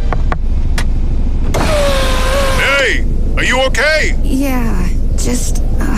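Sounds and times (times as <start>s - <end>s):
steady low rumble: 0.0s - 5.9s
whirring hum of a power window sliding down: 1.5s - 2.8s
speech: 3.7s - 5.6s.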